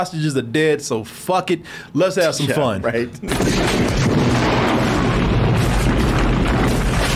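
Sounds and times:
speech: 0.0s - 4.2s
loud continuous rumbling explosions with deep booms and crackling bursts: 3.3s - 7.1s.

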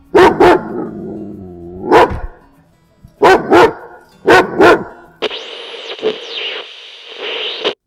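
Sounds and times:
dog barking: 0.0s - 0.9s, 1.8s - 2.4s, 3.2s - 5.0s
steady buzzy noise: 5.2s - 7.8s.

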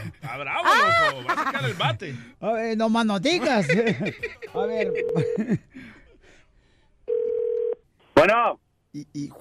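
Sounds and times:
laughter: 0.0s - 2.2s, 3.4s - 6.0s
speech: 0.1s - 6.0s, 8.2s - 9.3s
phone ringback tone while calling a mobile phone: 7.1s - 7.8s.

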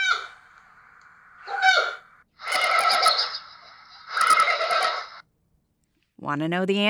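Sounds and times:
adult male giant panda calls: 0.0s - 0.4s, 1.4s - 5.1s
speech: 6.3s - 6.8s.

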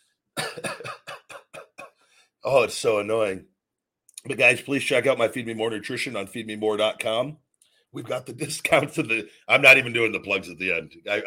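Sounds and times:
harsh coughing fit: 0.4s - 1.9s
speech: 2.4s - 3.5s, 4.2s - 11.2s.

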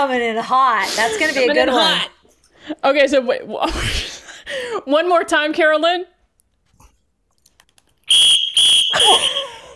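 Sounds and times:
speech: 0.0s - 6.1s, 9.0s - 9.4s
loud shrill whistle blown as a noisemaker: 8.1s - 9.7s.

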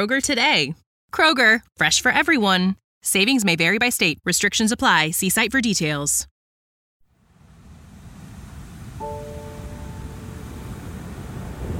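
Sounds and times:
speech: 0.0s - 6.3s
ocean surf on a beach: 7.3s - 11.7s
soft sustained tone: 8.7s - 11.3s.

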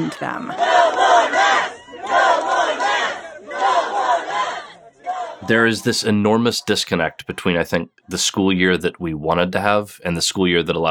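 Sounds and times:
speech: 0.0s - 1.5s, 5.5s - 10.8s
angry overflow crowd shouting at a school board meeting in Tennessee: 0.0s - 6.1s.

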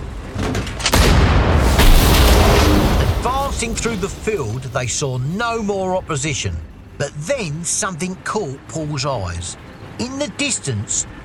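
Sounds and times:
crackling debris from explosion: 0.0s - 5.3s
German wheeled Pak-40 anti-tank gun blown up in a haystack: 0.9s - 4.9s
speech: 3.6s - 11.2s.

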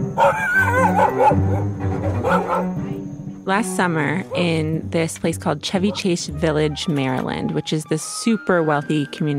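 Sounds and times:
speech: 0.2s - 1.8s, 3.5s - 9.3s
high whining dog yelp at a dog park: 0.2s - 2.8s
several dogs barking and yipping at a dog park in Chevy Chase Village Maryland: 0.2s - 2.8s, 4.2s - 4.6s, 5.8s - 6.2s.

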